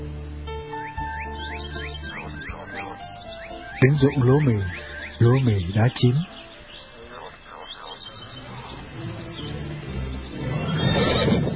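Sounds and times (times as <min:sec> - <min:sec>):
speech: 0:03.8 - 0:06.3
horse whinnying while chasing a cow from a wheat field: 0:10.4 - 0:11.5.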